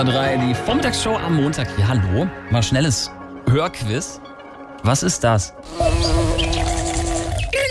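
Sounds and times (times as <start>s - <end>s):
speech: 0.0s - 4.2s, 4.8s - 6.3s
bumblebee buzzing as it shakes when it dislikes its food: 5.6s - 7.6s.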